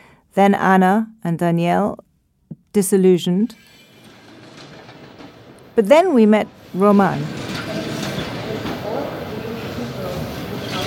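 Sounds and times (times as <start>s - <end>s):
speech: 0.4s - 2.0s, 2.8s - 3.8s, 5.8s - 7.4s
low mechanical noise at a train station: 3.6s - 10.8s
train rumbling at a platform of the Kyiv train station in Ukraine: 3.6s - 10.8s.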